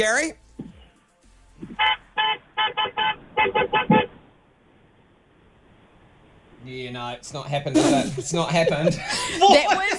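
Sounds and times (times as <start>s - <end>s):
speech: 0.0s - 0.4s, 6.6s - 9.9s
quiet traffic on a city avenue: 0.0s - 9.9s
car horn honks at a red light on a city avenue: 1.6s - 4.2s.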